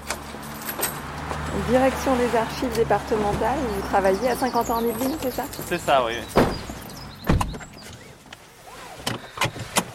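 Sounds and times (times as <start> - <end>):
speech: 1.6 - 6.6
car door slamming: 6.3 - 7.7.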